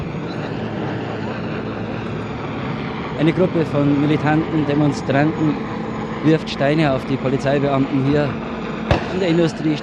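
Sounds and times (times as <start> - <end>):
helicopter engine and rotor droning overhead: 0.0 - 9.8
speech: 3.2 - 8.5, 9.1 - 9.8.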